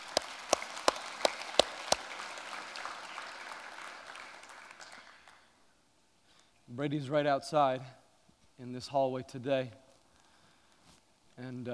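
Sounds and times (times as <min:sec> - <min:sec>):
sharp claps: 0:00.0 - 0:05.5
speech: 0:06.8 - 0:08.0, 0:08.6 - 0:09.8, 0:11.4 - 0:11.7.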